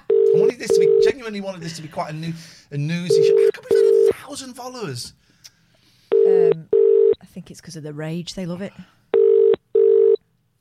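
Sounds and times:
telephone ringback tone of a call placed to a law firm: 0.1s - 1.2s, 3.1s - 4.1s, 6.1s - 7.1s, 9.2s - 10.2s
speech: 0.6s - 3.5s, 4.4s - 5.3s, 7.4s - 9.0s.

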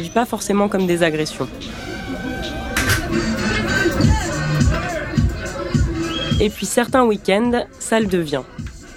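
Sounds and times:
speech: 0.0s - 1.9s, 6.4s - 8.6s
dense crowd chatter in a busy bar: 0.0s - 7.4s.

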